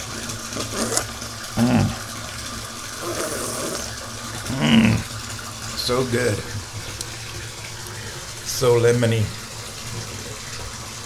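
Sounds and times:
water running from a tap into a filling bathtub: 0:00.0 - 0:11.0
speech: 0:05.9 - 0:06.6, 0:08.6 - 0:09.4.

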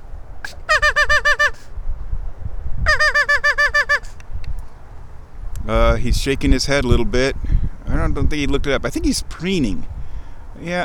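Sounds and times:
low outdoor rumble: 0:00.0 - 0:10.8
duck call quacking aimed at a mallard: 0:00.4 - 0:01.7, 0:02.9 - 0:04.2
speech: 0:06.0 - 0:09.9, 0:10.6 - 0:10.8.

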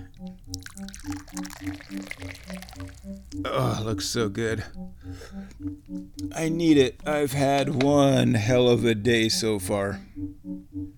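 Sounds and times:
speech: 0:00.2 - 0:10.1
tea being poured into a cup: 0:00.5 - 0:03.3.

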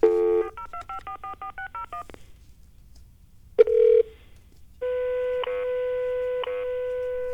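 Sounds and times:
steady phone line tones: 0:00.0 - 0:02.0, 0:04.8 - 0:07.3
touch-tone telephone dialing beeps: 0:00.0 - 0:02.0.

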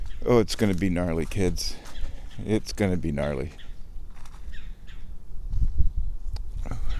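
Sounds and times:
wind buffeting the microphone: 0:00.0 - 0:06.9
speech: 0:00.2 - 0:01.8, 0:02.4 - 0:03.6
birds calling outdoors: 0:01.7 - 0:02.6, 0:03.2 - 0:05.1.

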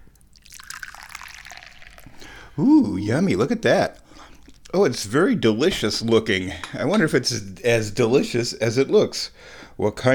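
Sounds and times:
Dahong Pao tea pouring from a teapot into a teacup: 0:00.4 - 0:02.2
speech: 0:02.6 - 0:04.0, 0:04.7 - 0:10.1.

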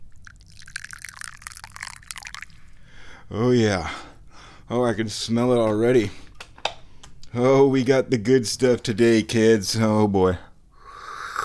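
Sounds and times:
tea pouring into a cup: 0:00.0 - 0:02.9
speech: 0:03.3 - 0:04.1, 0:04.7 - 0:06.2, 0:07.3 - 0:10.5.

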